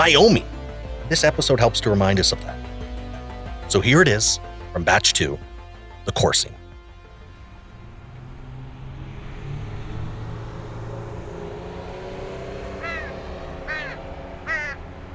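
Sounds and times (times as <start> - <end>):
speech: 0.0 - 0.5, 1.1 - 2.6, 3.7 - 5.5, 6.1 - 6.6
steady low rumble of traffic or engine noise: 6.8 - 15.1
crow cawing: 12.7 - 14.9.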